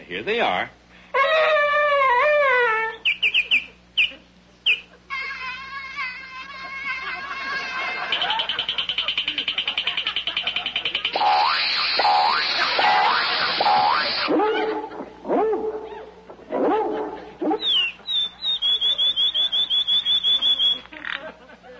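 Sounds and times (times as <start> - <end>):
speech: 0.1 - 1.6
dog howling: 1.2 - 3.1, 12.0 - 17.9
dog yelping: 1.2 - 4.9, 11.0 - 18.6
laughter: 3.4 - 21.7.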